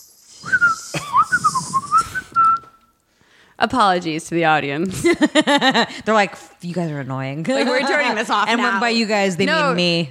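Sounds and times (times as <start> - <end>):
breathy wavering whistle with airy hiss: 0.0 - 3.0
speech: 3.6 - 10.1.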